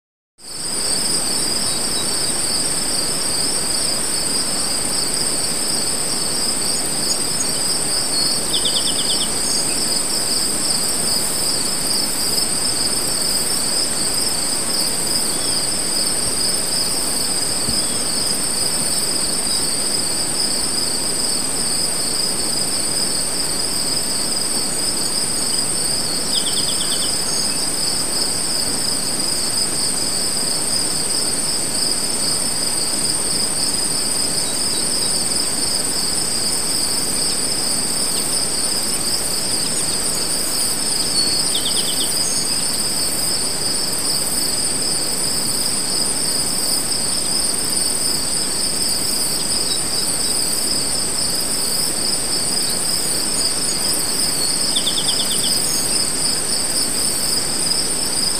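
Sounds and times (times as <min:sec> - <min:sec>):
crickets chirping: 0:00.4 - 0:58.3.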